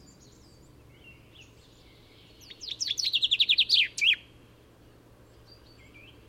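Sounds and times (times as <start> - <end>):
Common chaffinch Fringilla coelebs song: 0.0 - 6.2.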